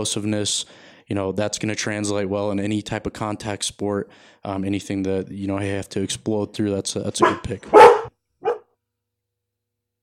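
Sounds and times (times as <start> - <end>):
speech: 0.0 - 8.0
dog giving a short, sharp bark: 7.2 - 8.7.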